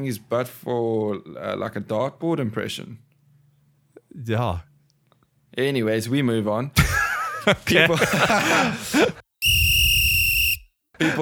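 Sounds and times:
speech: 0.0 - 3.1, 4.2 - 4.7, 5.6 - 6.8, 7.4 - 9.2, 11.0 - 11.2
laughter: 6.8 - 9.2, 11.0 - 11.2
long shrill referee whistle blast signalling extra time: 9.4 - 10.7.

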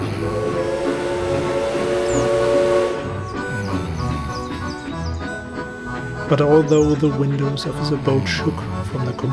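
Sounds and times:
steam train whistle: 0.0 - 6.5
steam train squealing and clanking as it pulls out of the station: 0.0 - 7.6
speech: 6.3 - 9.3.

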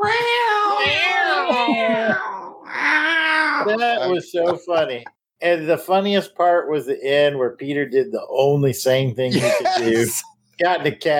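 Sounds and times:
cats fighting and yowling: 0.0 - 3.8
speech: 3.6 - 11.1.

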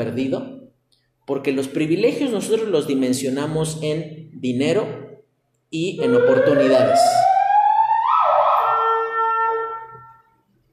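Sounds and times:
speech: 0.0 - 0.6, 1.3 - 5.0, 5.7 - 7.2
police car siren wailing and passing by: 6.0 - 10.2.

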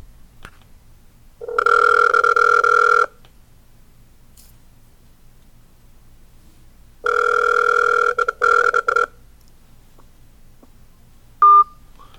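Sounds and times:
mobile phone ringing: 1.4 - 3.2, 7.0 - 9.2, 11.4 - 11.8.

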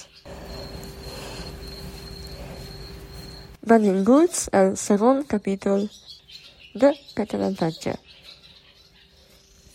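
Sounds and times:
insects trilling in spring: 0.0 - 3.7
speech: 3.6 - 6.1, 6.8 - 8.0.

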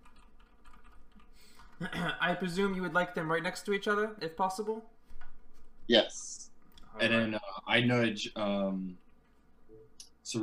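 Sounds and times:
rapid typing on a computer keyboard: 0.0 - 1.3
speech: 1.8 - 4.9, 5.9 - 9.0.

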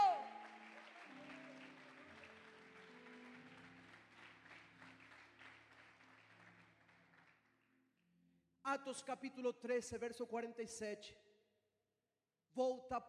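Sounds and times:
congregation applauding in a large room: 0.0 - 7.5
speech: 8.7 - 11.2, 12.6 - 13.0.

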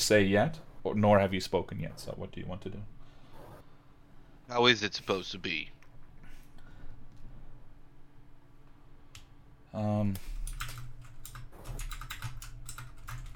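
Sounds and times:
speech: 0.0 - 3.0, 4.5 - 5.8, 9.7 - 10.3
computer keyboard typing to roll a digital die: 10.4 - 13.3.

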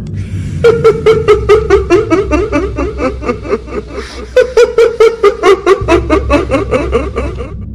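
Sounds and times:
low rumbling background: 0.0 - 7.7
long eerie high-pitched cackling laugh: 0.2 - 7.7.

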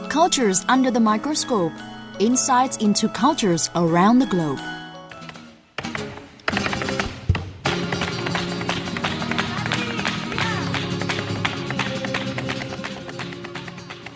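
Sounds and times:
speech: 0.2 - 4.8
Spanish flamenco guitar: 5.1 - 14.1
brisk rhythmic hand clapping: 5.2 - 14.1.

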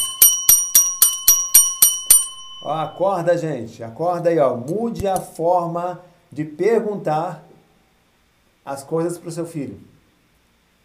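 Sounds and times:
small handbell ringing: 0.0 - 3.2
speech: 2.6 - 7.5, 8.7 - 9.9.

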